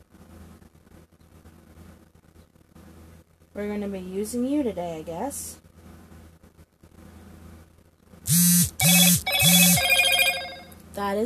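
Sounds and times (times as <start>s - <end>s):
speech: 3.6s - 5.6s, 11.0s - 11.2s
mobile phone ringing: 8.3s - 10.8s.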